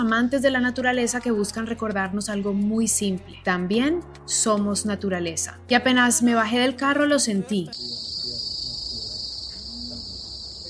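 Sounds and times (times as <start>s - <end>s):
speech: 0.0s - 8.1s
crickets trilling in nature: 7.7s - 10.6s.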